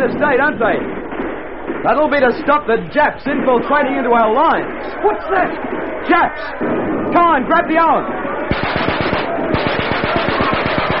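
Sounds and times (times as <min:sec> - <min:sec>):
speech: 0:00.0 - 0:01.0, 0:01.8 - 0:09.0
rapid machine-gun fire at night along a wartime defensive line: 0:08.5 - 0:10.9.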